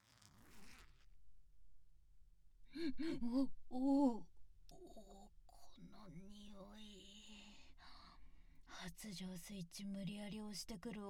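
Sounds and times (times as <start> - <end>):
zipper being pulled open: 0.0 - 1.1
speech: 2.8 - 4.3, 5.8 - 7.9, 8.7 - 11.0.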